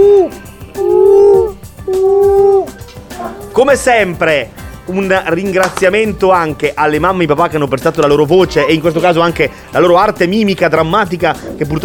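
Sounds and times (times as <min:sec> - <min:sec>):
person imitating an owl hooting: 0:00.0 - 0:03.6
speech: 0:03.6 - 0:11.8.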